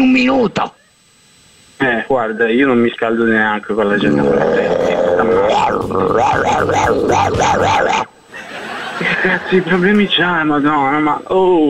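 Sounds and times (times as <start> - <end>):
speech: 0.0 - 0.8, 1.8 - 4.9, 5.5 - 8.1, 9.0 - 11.6
dog growling: 3.9 - 8.1
laughter: 4.8 - 10.0
dogs yelping barks: 5.4 - 8.1.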